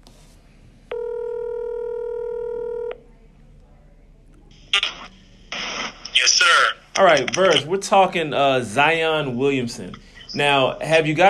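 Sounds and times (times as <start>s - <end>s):
steady buzzy telephone tone: 0.9s - 3.0s
speech: 6.4s - 11.2s.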